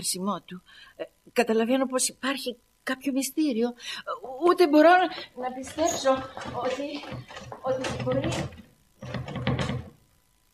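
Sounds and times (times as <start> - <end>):
speech: 0.0 - 9.4
door handle jiggled against a locked door: 5.4 - 10.0.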